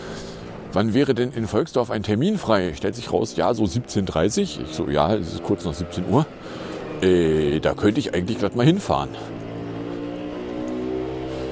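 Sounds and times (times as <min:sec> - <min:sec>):
speech: 0:00.7 - 0:09.4
small red three-wheeled car engine revving: 0:04.4 - 0:08.5, 0:09.1 - 0:11.5.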